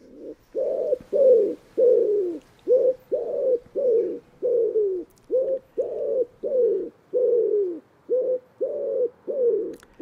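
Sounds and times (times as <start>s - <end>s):
common wood pigeon cooing: 0.0s - 10.0s.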